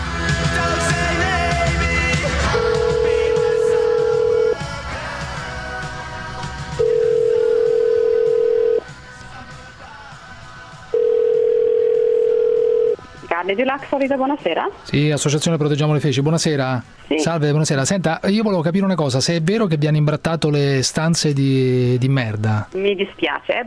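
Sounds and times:
short noisy start: 0:00.0 - 0:23.6
telephone tones as a call is placed to a hotel: 0:06.8 - 0:08.8, 0:11.0 - 0:13.0
speech: 0:13.5 - 0:23.6.

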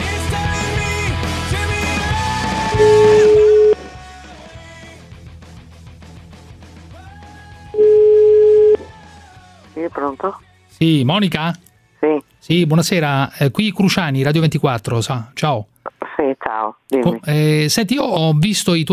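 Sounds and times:
music: 0:00.0 - 0:14.3
telephone line tones while a call is placed during a radio phone-in: 0:02.8 - 0:03.9, 0:07.8 - 0:08.9
speech: 0:10.0 - 0:15.7, 0:16.3 - 0:18.9.

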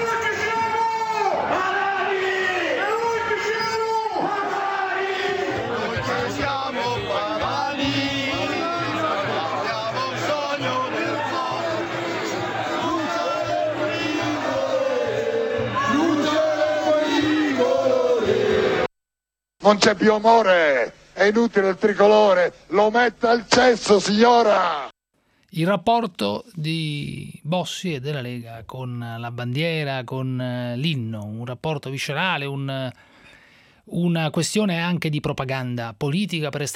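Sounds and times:
large crowd of political supporters shouting and chanting: 0:00.0 - 0:18.9, 0:22.8 - 0:24.9
speech: 0:19.7 - 0:24.9, 0:25.5 - 0:33.1, 0:33.9 - 0:36.7.

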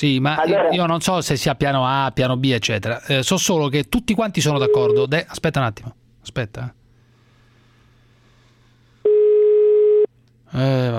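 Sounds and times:
speech: 0:00.0 - 0:06.8, 0:10.5 - 0:10.9
telephone ringback tone on a call waiting to be answered: 0:09.1 - 0:10.1.

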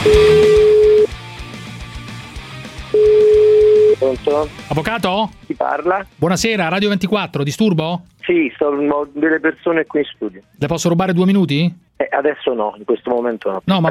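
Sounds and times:
telephone dial tone while placing a call: 0:00.1 - 0:01.1, 0:03.0 - 0:04.0
speech: 0:04.2 - 0:13.8.

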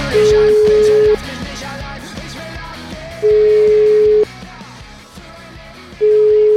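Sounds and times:
telephone ringback tone while a call is placed: 0:00.1 - 0:01.2, 0:03.2 - 0:04.3, 0:06.0 - 0:06.5.

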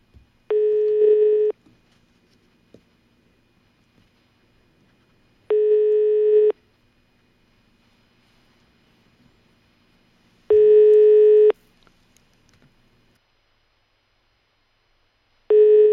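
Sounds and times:
telephone busy tone after a call is hung up: 0:00.5 - 0:01.6, 0:05.5 - 0:06.6, 0:10.5 - 0:11.6, 0:15.5 - 0:15.9.

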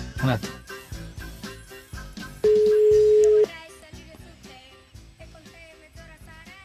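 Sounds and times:
busier music-like sound: 0:00.0 - 0:04.0
speech: 0:00.2 - 0:00.6
single steady telephone ring tone: 0:02.4 - 0:03.5.

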